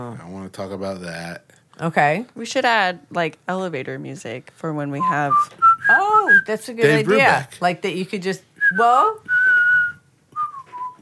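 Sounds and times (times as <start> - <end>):
speech: 0.0 - 9.3
person whistling a tune: 5.0 - 6.5, 8.6 - 10.9.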